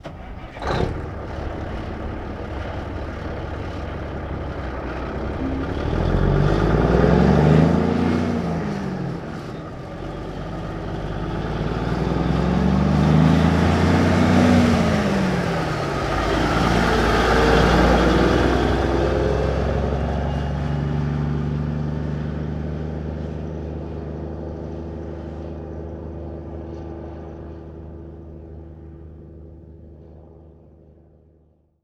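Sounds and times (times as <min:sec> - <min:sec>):
1954 big rig truck engine starting and idling: 0:00.0 - 0:22.1.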